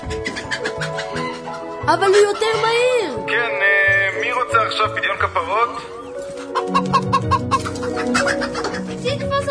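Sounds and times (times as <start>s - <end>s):
rooster being pestered by children clucking: 0.1s - 2.7s, 6.4s - 9.0s
speech: 1.9s - 3.5s, 4.7s - 6.0s, 6.6s - 9.5s.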